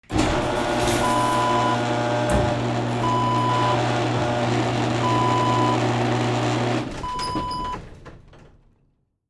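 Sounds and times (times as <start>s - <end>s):
garage door opening: 0.0s - 8.8s.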